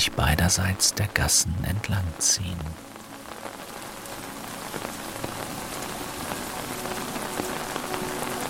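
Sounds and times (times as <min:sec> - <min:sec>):
speech: 0:00.1 - 0:03.0
rainwater pattering on stone-paved alleys: 0:02.3 - 0:08.4.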